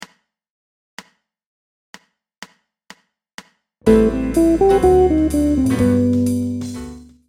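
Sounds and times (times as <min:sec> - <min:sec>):
guitar playing major ii V I outlines: 0:03.9 - 0:07.1.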